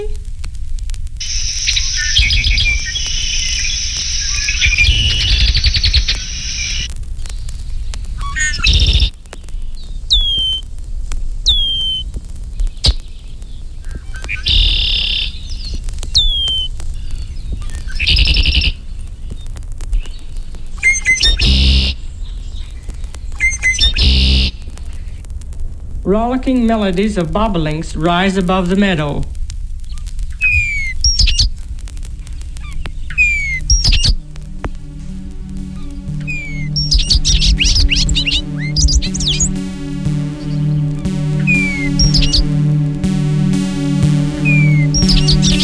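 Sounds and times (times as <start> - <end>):
low wind-like rumble: 1.0 - 23.3, 24.2 - 45.6
red-winged blackbirds calling: 1.2 - 6.9, 8.2 - 9.1, 9.7 - 10.6, 11.5 - 12.0, 12.6 - 25.1, 29.9 - 31.5, 32.2 - 34.2, 35.2 - 39.6, 40.2 - 42.5
speech: 26.1 - 29.4.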